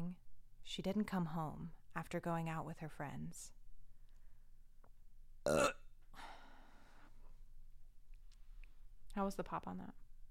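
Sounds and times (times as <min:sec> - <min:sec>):
speech: 0:00.6 - 0:03.6, 0:05.5 - 0:06.3, 0:09.2 - 0:10.0
loud burp with a rough harmonic rasp: 0:05.5 - 0:05.8.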